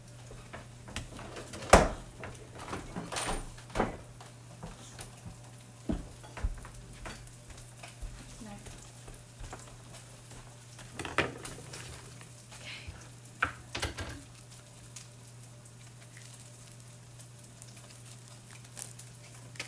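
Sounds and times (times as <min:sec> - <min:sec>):
low constant hum: 0:00.0 - 0:19.6
Spam sizzling in a frying pan: 0:04.1 - 0:19.6.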